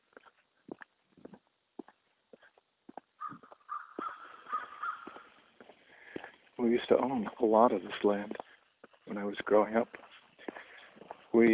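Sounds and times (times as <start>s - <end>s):
faint irregular knocks or footsteps: 0.0s - 11.5s
crows cawing: 3.2s - 5.6s
speech: 6.6s - 8.5s, 9.1s - 10.0s, 11.4s - 11.5s.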